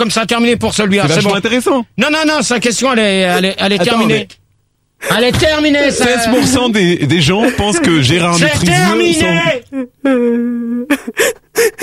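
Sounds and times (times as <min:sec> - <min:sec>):
speech: 0:00.0 - 0:04.4, 0:05.0 - 0:11.8
person crying with whimpering wail and sobs: 0:06.0 - 0:06.7, 0:07.3 - 0:11.8.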